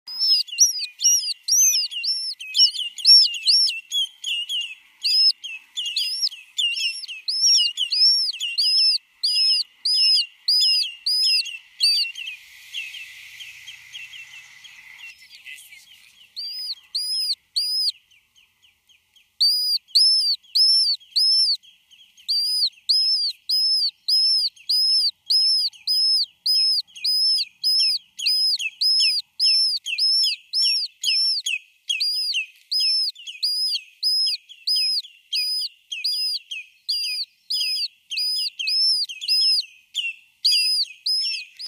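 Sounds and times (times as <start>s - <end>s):
lesser yellowlegs chicks calling: 0.1s - 15.1s, 16.2s - 18.5s, 19.3s - 41.6s.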